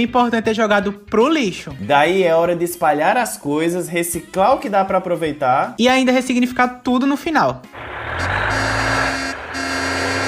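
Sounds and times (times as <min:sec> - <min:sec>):
speech: 0:00.0 - 0:08.4
garbage truck engine rumbling: 0:07.8 - 0:10.2.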